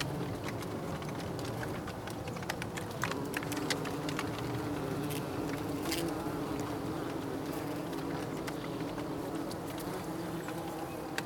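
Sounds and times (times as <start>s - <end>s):
soft clicks and ticks: 0.0s - 11.2s
bees buzzing in a steady low hum: 2.9s - 11.2s.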